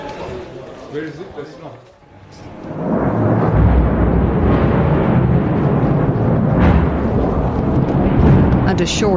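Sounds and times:
speech: 0.9 - 2.5, 8.8 - 9.1
massive airstrike explosion in Lebanon with deep rolling roar: 2.3 - 9.1.

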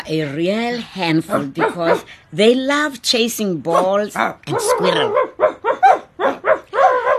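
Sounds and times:
speech: 0.1 - 5.9
big dogs with light brown coats barking: 1.2 - 2.1, 3.7 - 7.1.

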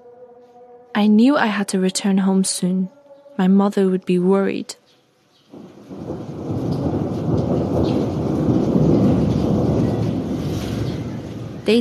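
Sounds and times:
speech: 1.0 - 4.8
rain: 5.2 - 11.8
long deep roll of thunder: 5.5 - 11.8.

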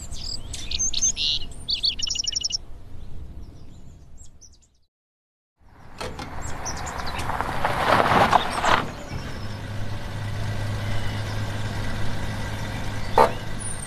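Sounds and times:
truck engine idling: 5.7 - 13.8.

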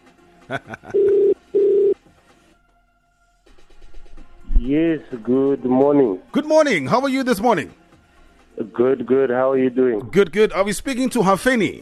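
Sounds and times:
laughter: 0.4 - 1.3
speech: 0.5 - 1.3, 4.6 - 7.8, 8.7 - 11.8
telephone dialing beeps: 1.0 - 2.0.

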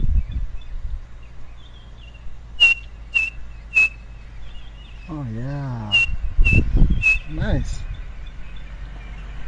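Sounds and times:
low outdoor rumble: 0.0 - 9.4
small bird with chestnut breast band whistling three-note call: 2.6 - 4.1, 5.8 - 7.4
speech: 5.1 - 6.0, 7.0 - 8.0.

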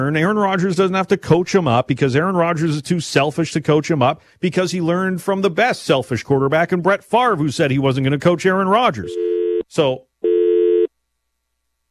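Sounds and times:
speech: 0.0 - 10.1
telephone dial tone: 9.0 - 9.6, 10.2 - 10.9.

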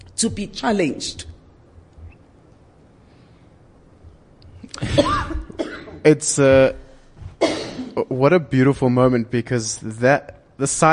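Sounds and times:
speech: 0.2 - 1.3, 6.0 - 6.8, 7.4 - 10.9
woman giving a short sharp cough: 4.8 - 6.0, 7.4 - 8.0.

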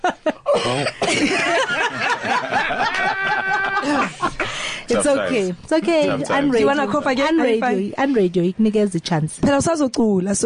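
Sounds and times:
laughter: 0.0 - 4.4
speech: 0.2 - 1.7, 5.0 - 10.4
second tenor singer coughing: 0.5 - 1.6.

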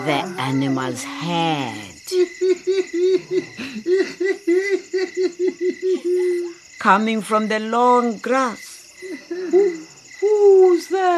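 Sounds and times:
speech: 0.0 - 11.1
human voice imitating a hyena's giggling laugh: 2.1 - 6.6.

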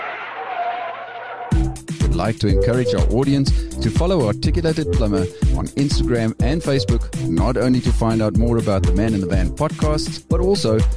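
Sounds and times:
car braking tire screech: 0.0 - 1.6
speech: 2.2 - 10.9.

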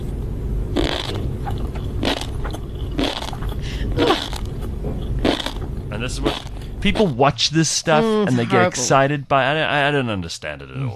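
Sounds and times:
steady low hum: 0.0 - 10.9
woman crunchily chewing tobiko eggs and sea grapes: 0.7 - 7.2
speech: 6.0 - 10.9.

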